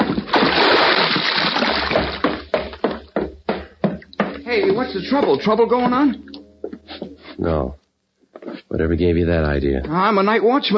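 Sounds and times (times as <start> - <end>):
man's heavy body plunging into cold water: 0.0 - 2.5
speech: 4.5 - 6.3, 7.4 - 7.8, 8.7 - 10.7.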